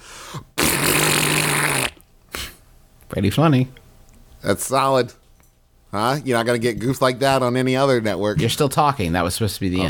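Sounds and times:
voice imitating a big fart with a buzzing raspberry: 0.6 - 2.1
speech: 3.2 - 3.8, 4.4 - 5.2, 5.9 - 9.8.

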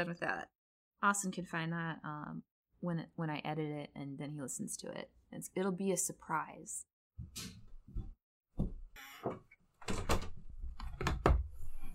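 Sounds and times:
speech: 0.0 - 8.1, 9.2 - 9.5
heavy wooden door thuds and knocks while being delivered to a house: 7.2 - 11.5.

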